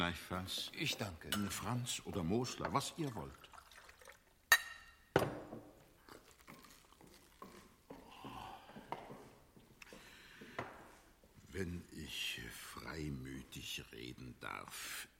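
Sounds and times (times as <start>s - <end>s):
speech: 0.0s - 3.5s, 11.6s - 15.1s
water pouring into a glass: 2.4s - 5.0s, 5.9s - 8.0s
glassy clinks: 4.5s - 5.2s.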